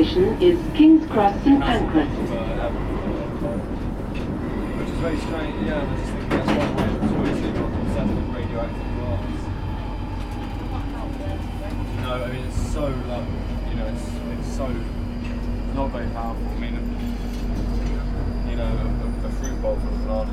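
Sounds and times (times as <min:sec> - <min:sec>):
underground train running with rumble and clatter: 0:00.0 - 0:20.3
speech: 0:00.1 - 0:03.7, 0:05.0 - 0:09.4, 0:12.0 - 0:15.0, 0:15.8 - 0:16.9, 0:18.6 - 0:20.3.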